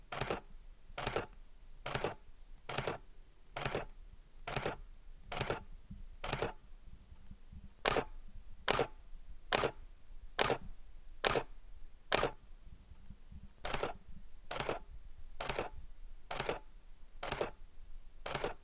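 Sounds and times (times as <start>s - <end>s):
Canon EOS 6D camera shutter in silent mode: 0.1s - 0.4s, 1.0s - 3.0s, 3.6s - 3.9s, 4.5s - 5.6s, 6.2s - 6.6s, 7.9s - 8.1s, 8.7s - 8.9s, 9.5s - 9.8s, 10.4s - 10.6s, 11.2s - 11.5s, 12.1s - 12.4s, 13.6s - 14.8s, 15.4s - 15.7s, 16.3s - 16.6s, 17.2s - 17.6s, 18.2s - 18.6s.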